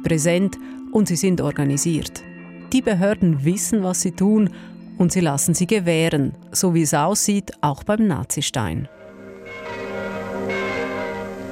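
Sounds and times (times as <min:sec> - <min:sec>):
speech: 0:00.0 - 0:09.1
church bells ringing: 0:08.9 - 0:11.5.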